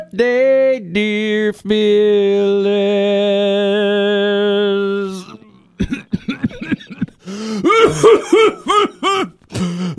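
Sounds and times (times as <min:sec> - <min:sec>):
speech: 0:00.1 - 0:04.0, 0:07.9 - 0:08.9
person coughing: 0:05.8 - 0:09.9.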